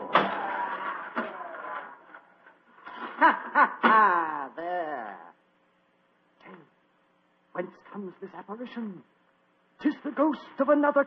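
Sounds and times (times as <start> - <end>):
trick barber chair mechanical clunk: 0.0 - 2.3
trapdoor grinding, creaking slide: 0.0 - 3.1
laughter: 2.9 - 4.6
speech: 8.1 - 9.2, 9.8 - 11.0.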